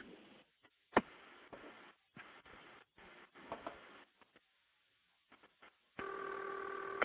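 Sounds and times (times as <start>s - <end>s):
long steady telephone tone: 6.0s - 7.0s.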